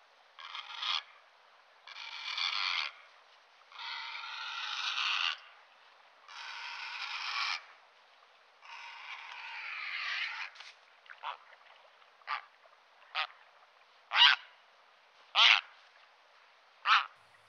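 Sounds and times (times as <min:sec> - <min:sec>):
grey heron giving harsh hoarse croaks: 0:00.4 - 0:01.1, 0:01.9 - 0:03.0, 0:03.7 - 0:05.4, 0:06.3 - 0:07.6, 0:08.6 - 0:10.6, 0:14.1 - 0:14.4, 0:15.4 - 0:15.7, 0:16.8 - 0:17.2.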